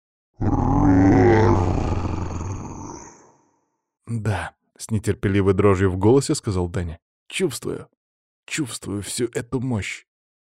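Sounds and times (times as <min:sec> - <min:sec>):
deep booming low roar: 0:00.4 - 0:03.2
speech: 0:04.2 - 0:10.5.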